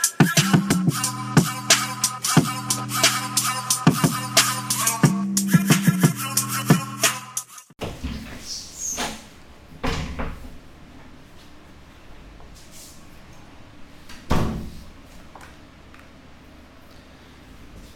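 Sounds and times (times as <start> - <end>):
programmed drum beat: 0.0 - 7.6.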